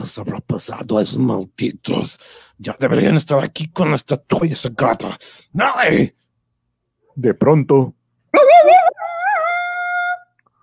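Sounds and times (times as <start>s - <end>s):
speech: 0.0s - 6.2s, 7.2s - 8.5s
jackal-like howl used as a signal that someone is approaching: 8.3s - 10.3s.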